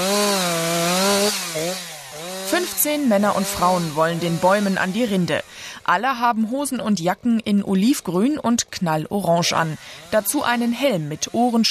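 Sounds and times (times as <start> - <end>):
chainsaw engine running during forestry tree felling: 0.0 - 5.9, 9.4 - 11.6
speech: 2.5 - 11.6.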